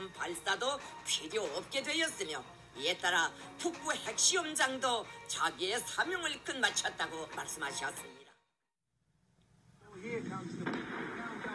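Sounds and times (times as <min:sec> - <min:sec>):
speech: 0:00.1 - 0:08.2
explosion collapsing a tunnel entrance: 0:10.0 - 0:11.5
sharp crack: 0:10.1 - 0:11.5.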